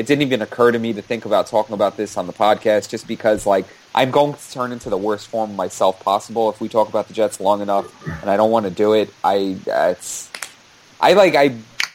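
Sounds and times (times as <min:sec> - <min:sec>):
speech: 0:00.0 - 0:10.4, 0:11.0 - 0:11.7
person vocalizing: 0:07.7 - 0:08.4
hands slapping knees: 0:10.3 - 0:10.6.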